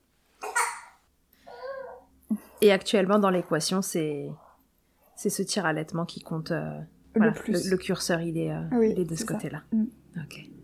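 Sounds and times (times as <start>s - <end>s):
baby babbling: 1.5s - 2.1s
speech: 2.3s - 4.4s, 5.2s - 10.6s.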